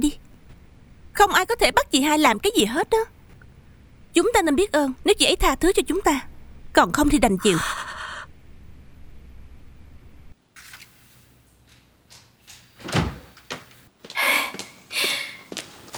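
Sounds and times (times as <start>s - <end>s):
speech: 1.2s - 3.2s, 4.2s - 7.9s
door opening with a click and handle rattle: 12.5s - 13.8s.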